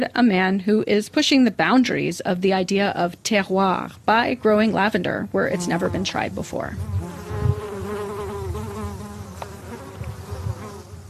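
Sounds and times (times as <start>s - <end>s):
speech: 0.0s - 7.0s
bees buzzing among lavender flowers outdoors: 4.2s - 11.0s.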